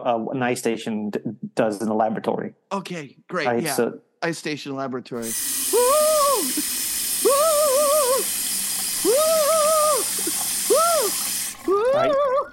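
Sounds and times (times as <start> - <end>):
speech: 0.0 - 6.7
water running from a faucet: 5.2 - 12.5
person humming with head under the water stream: 5.7 - 8.3, 9.0 - 12.5.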